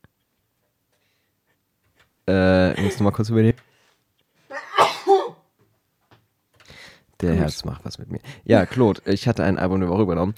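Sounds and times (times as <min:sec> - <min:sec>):
speech: 0:02.3 - 0:03.6, 0:07.2 - 0:10.3
loud sneeze with a quick breathy intake: 0:04.5 - 0:05.5.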